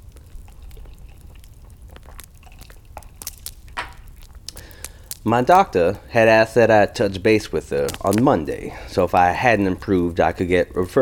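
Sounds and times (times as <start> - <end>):
slurp from a drink: 0.0 - 3.6
person sipping a drink: 0.0 - 5.3
wet mouth clicks: 0.0 - 5.3
speech: 5.2 - 10.9.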